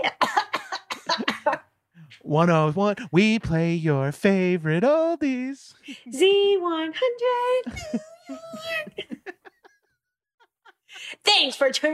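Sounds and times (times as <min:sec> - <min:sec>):
woman clearing her throat: 0:00.0 - 0:01.6
speech: 0:02.3 - 0:08.8, 0:11.3 - 0:11.9
laughter: 0:07.6 - 0:11.2.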